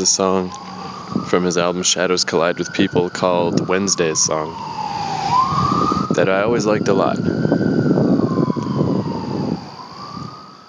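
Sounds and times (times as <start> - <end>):
speech: 0.0 - 8.0
emergency vehicle siren wailing: 0.0 - 10.6
low rumble of traffic: 0.0 - 10.6.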